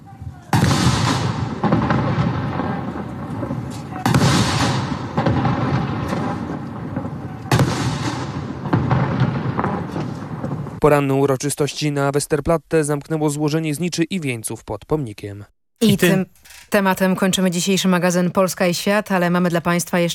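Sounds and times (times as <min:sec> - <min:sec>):
ceremonial cannon salute shots booming in open air: 0:00.5 - 0:10.8
speech: 0:10.8 - 0:20.1.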